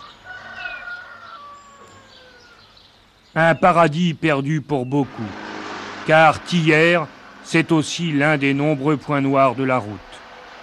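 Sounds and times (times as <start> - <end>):
birds calling under the trees: 0.0 - 10.1
speech: 3.4 - 5.4, 6.1 - 10.1.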